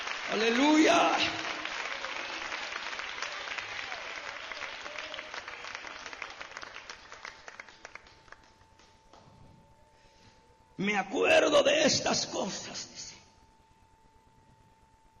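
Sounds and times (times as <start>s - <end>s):
large crowd applauding: 0.0s - 9.2s
speech: 0.3s - 1.4s, 10.8s - 13.1s.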